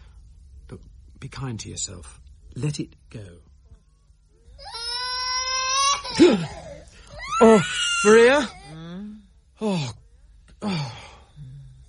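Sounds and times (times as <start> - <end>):
speech: 0.7 - 3.5, 6.1 - 6.7, 7.4 - 8.6, 9.6 - 10.0, 10.6 - 11.0
small child crying: 4.6 - 8.9.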